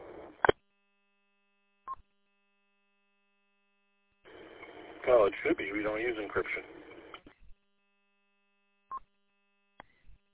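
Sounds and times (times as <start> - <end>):
two-way radio beeps with encryption turned off: 4.3 - 7.2
speech: 5.1 - 6.8.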